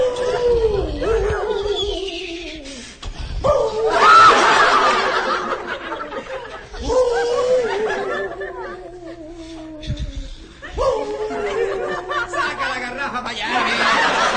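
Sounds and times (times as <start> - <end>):
person imitating a wolf's howl: 0.0 - 2.8, 3.4 - 4.3, 6.8 - 12.2
breathy laughing noise: 3.9 - 12.8, 13.5 - 14.3.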